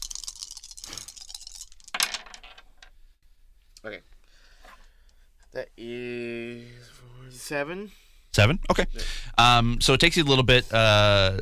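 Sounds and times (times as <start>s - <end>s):
dice rattling in a cupped hand: 0.0s - 2.9s
speech: 3.8s - 4.1s, 5.5s - 11.4s.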